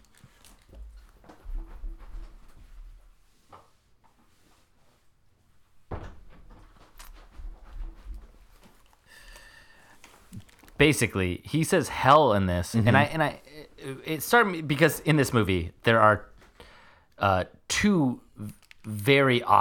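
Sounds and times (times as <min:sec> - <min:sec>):
door closing with wooden bumps and creaks: 0:05.9 - 0:06.8
speech: 0:10.8 - 0:16.3, 0:17.2 - 0:19.5.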